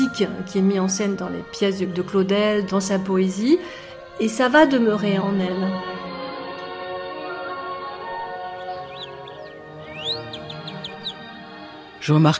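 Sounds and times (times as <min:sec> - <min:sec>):
speech: 0:00.2 - 0:05.9, 0:12.0 - 0:12.3
nightingale singing: 0:06.4 - 0:12.0.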